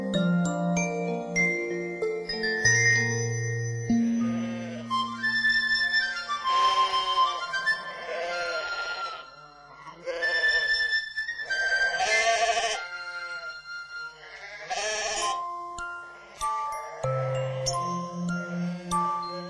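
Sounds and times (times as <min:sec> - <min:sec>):
soft musical backing of sustained tones and low notes: 0:00.0 - 0:08.2, 0:10.6 - 0:19.4
sheep bleating: 0:04.2 - 0:05.0, 0:06.0 - 0:10.9, 0:11.6 - 0:15.4, 0:16.1 - 0:19.4.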